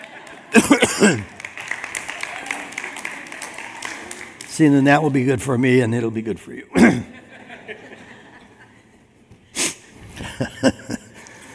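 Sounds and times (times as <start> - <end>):
laughter: 0.0 - 1.5, 6.7 - 9.1, 10.1 - 11.5
audience applauding softly: 0.0 - 5.8
audience crowd noise: 0.0 - 11.5
speech: 0.5 - 1.4, 4.6 - 7.1
speaker coughing: 0.6 - 1.4, 6.7 - 7.1.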